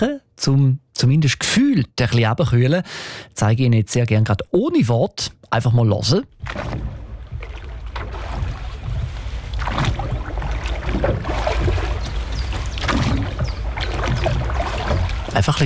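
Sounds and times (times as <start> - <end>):
speech: 0.0 - 7.0, 15.4 - 15.6
water lapping and gurgling against a rowboat hull on a lake: 6.2 - 15.6.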